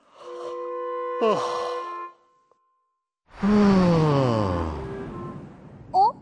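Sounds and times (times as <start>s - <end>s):
speech: 1.2s - 1.7s
person yawning: 3.4s - 4.8s.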